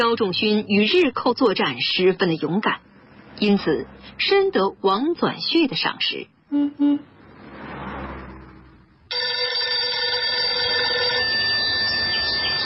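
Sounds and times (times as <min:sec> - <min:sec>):
speech: 0:00.0 - 0:07.6
whooshing swell: 0:06.8 - 0:08.8
old-fashioned telephone bell ringing loudly: 0:09.1 - 0:12.6.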